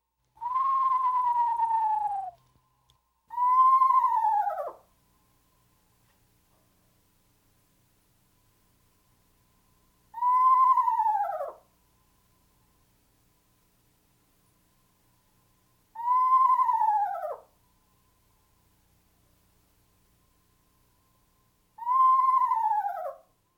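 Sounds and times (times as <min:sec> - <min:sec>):
eastern screech owl descending whinny call: 0:00.4 - 0:02.4, 0:03.3 - 0:04.9, 0:10.2 - 0:11.7, 0:16.0 - 0:17.5, 0:21.8 - 0:23.3.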